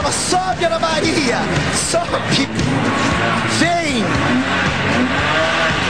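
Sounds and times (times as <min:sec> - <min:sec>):
speech: 0:00.1 - 0:05.3
red Ferrari sports car engine revving: 0:01.5 - 0:05.8.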